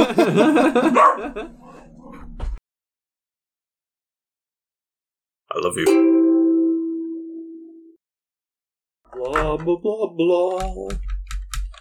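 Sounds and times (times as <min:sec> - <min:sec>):
laughter: 0:00.0 - 0:01.6
speech: 0:00.1 - 0:01.6, 0:05.5 - 0:06.4, 0:09.1 - 0:11.1
dog barking and yipping excitedly: 0:00.8 - 0:02.2.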